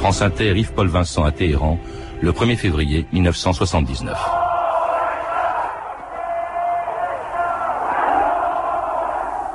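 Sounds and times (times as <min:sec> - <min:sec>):
speech: 0:00.0 - 0:04.4
huge crowd cheering and shouting in Tehran: 0:04.3 - 0:09.5.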